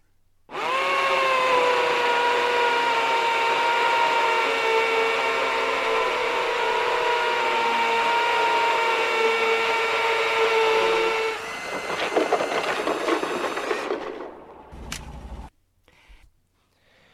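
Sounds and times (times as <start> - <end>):
neighbour's power drill drilling into material: 0.5 - 14.2.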